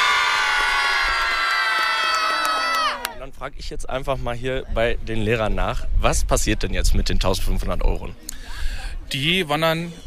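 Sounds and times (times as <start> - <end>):
schoolchildren cheering and shouting after their class qualified for a prize final: 0.0 - 3.2
speech: 3.4 - 10.0.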